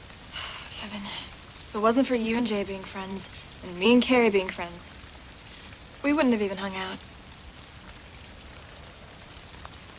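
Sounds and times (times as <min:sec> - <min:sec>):
steady rain: 0:00.0 - 0:09.9
speech: 0:00.8 - 0:05.0, 0:06.0 - 0:07.1.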